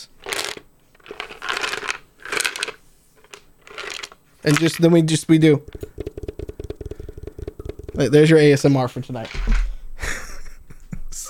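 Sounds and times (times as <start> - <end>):
dice rattling and rolling: 0.0 - 4.9, 5.7 - 8.2
speech: 4.4 - 5.9, 8.0 - 9.5.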